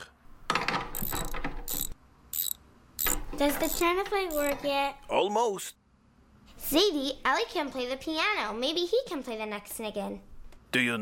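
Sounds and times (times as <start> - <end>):
ratchet wrench clicking: 0.9 - 4.6
speech: 3.4 - 5.8, 6.7 - 11.0.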